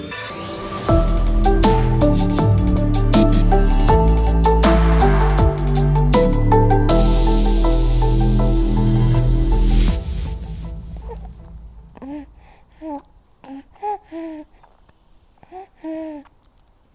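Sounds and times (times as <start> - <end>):
loud musical passage: 0.0 - 11.9
newborn baby boy cooing and babbling: 10.9 - 16.5.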